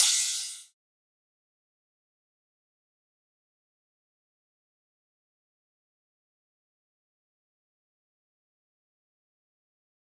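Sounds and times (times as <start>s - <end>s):
trap drum kit crash cymbal: 0.0s - 0.7s.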